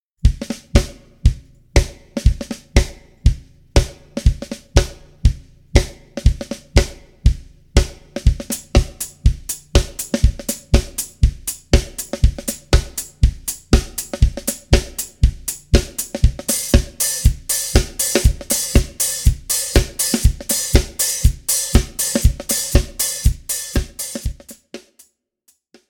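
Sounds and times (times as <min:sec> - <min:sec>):
house music groove: 0:00.2 - 0:24.7.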